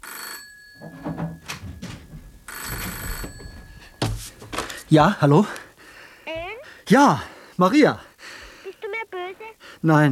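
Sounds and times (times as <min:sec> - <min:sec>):
telephone ringing with electronic ring bursts: 0:00.0 - 0:05.2
speech: 0:04.9 - 0:05.6, 0:06.9 - 0:08.1, 0:09.8 - 0:10.1.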